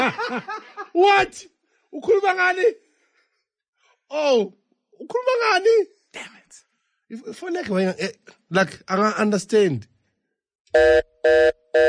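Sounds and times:
laughter: 0:00.0 - 0:01.1
speech: 0:00.1 - 0:02.8, 0:04.1 - 0:09.9, 0:10.7 - 0:11.8
telephone ringing with electronic buzzing tone: 0:10.7 - 0:11.8.

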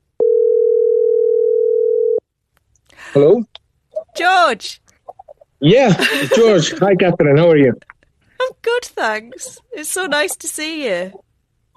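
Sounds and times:
electronic telephone ringing tone on an outgoing call: 0:00.2 - 0:02.2
speech: 0:03.1 - 0:03.6, 0:04.2 - 0:04.8, 0:05.6 - 0:07.9, 0:08.6 - 0:11.2
laughter: 0:05.8 - 0:07.8.

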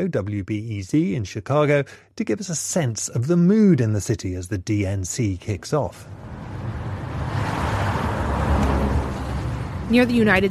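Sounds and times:
speech: 0:00.0 - 0:06.3, 0:09.9 - 0:10.5
cars passing by on a busy city street: 0:04.2 - 0:10.5.

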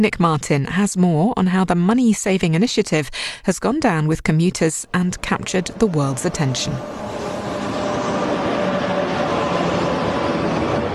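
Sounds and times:
speech: 0:00.0 - 0:07.1
train pulling into a station during morning rush hour: 0:04.8 - 0:10.9.

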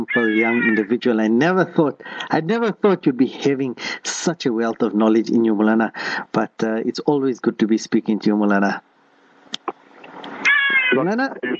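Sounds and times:
birds calling: 0:00.0 - 0:01.0, 0:09.7 - 0:11.5
speech: 0:00.0 - 0:08.9, 0:10.9 - 0:11.5.

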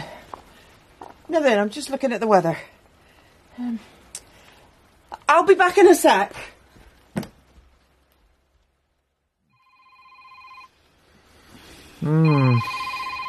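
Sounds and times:
speech: 0:01.3 - 0:02.8, 0:03.6 - 0:04.0, 0:05.3 - 0:06.5, 0:12.0 - 0:12.8
telephone ringing with a steady electronic tone: 0:09.5 - 0:10.7, 0:12.2 - 0:13.2.

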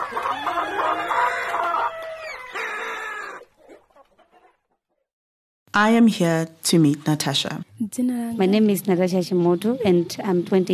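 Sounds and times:
rooster crowing: 0:00.0 - 0:03.5
chickens clucking: 0:00.0 - 0:05.1
speech: 0:05.8 - 0:10.7.

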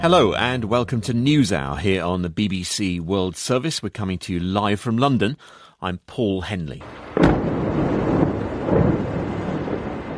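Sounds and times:
speech: 0:00.0 - 0:07.0, 0:07.8 - 0:08.2
explosions from airstrikes on targets in a city's southern suburbs at night: 0:06.9 - 0:10.1.

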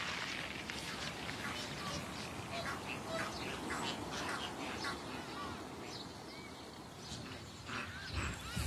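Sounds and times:
steady wash of noise: 0:00.0 - 0:08.6
ducks quacking at a Black River bird watching site wetland: 0:00.8 - 0:05.7, 0:07.1 - 0:08.6.

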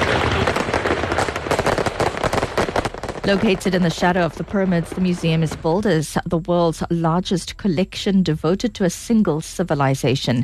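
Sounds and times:
fireworks crackling and popping: 0:00.0 - 0:06.2
speech: 0:03.3 - 0:10.4.

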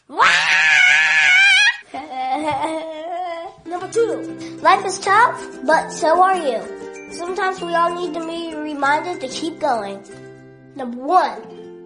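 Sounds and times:
loud sustained human scream breaking into a strained wailing cry: 0:00.0 - 0:01.8
speech: 0:03.9 - 0:10.2, 0:10.8 - 0:11.5.

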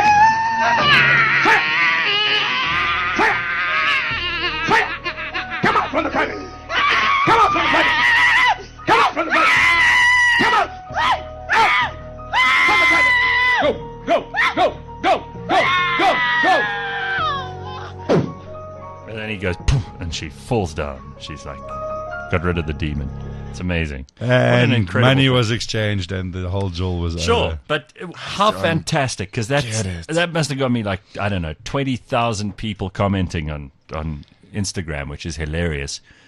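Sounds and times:
woman screaming in high-pitched strained bursts during an exorcism: 0:00.0 - 0:06.0, 0:06.7 - 0:17.9
speech: 0:20.2 - 0:36.2.

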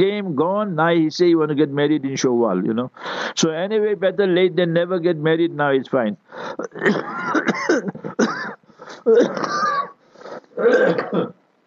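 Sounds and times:
speech: 0:00.0 - 0:08.0, 0:08.9 - 0:09.9, 0:10.6 - 0:11.4
person clearing throat: 0:06.6 - 0:11.4
person coughing in rough voiced bursts: 0:06.6 - 0:11.4.

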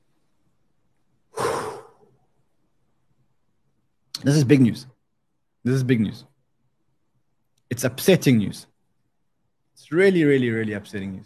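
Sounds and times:
deep breath in and out: 0:01.3 - 0:02.2
speech: 0:04.2 - 0:04.9, 0:05.6 - 0:06.3, 0:07.7 - 0:08.7, 0:09.8 - 0:11.2.

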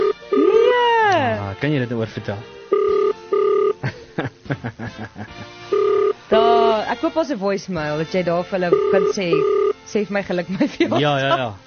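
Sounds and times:
phone line ringback tone: 0:00.0 - 0:01.2, 0:02.7 - 0:03.8, 0:05.7 - 0:06.8, 0:08.7 - 0:09.8
speech: 0:01.6 - 0:02.6, 0:03.8 - 0:11.6
laughter: 0:03.8 - 0:05.5, 0:10.5 - 0:11.6.

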